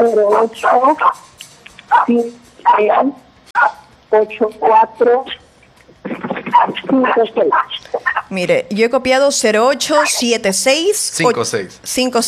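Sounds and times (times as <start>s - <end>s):
speech: 0.0s - 5.4s, 6.1s - 12.2s
small dog barking and yapping: 0.3s - 1.2s, 1.8s - 3.8s.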